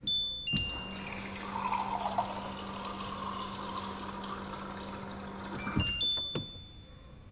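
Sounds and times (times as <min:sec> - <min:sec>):
water dispenser: 0:00.5 - 0:06.3.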